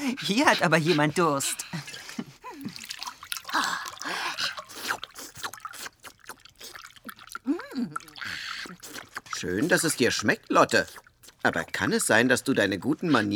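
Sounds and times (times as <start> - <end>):
speech: 0.2 - 1.9, 9.4 - 13.3
thick tomato juice poured into a small bowl on the floor: 2.4 - 12.9.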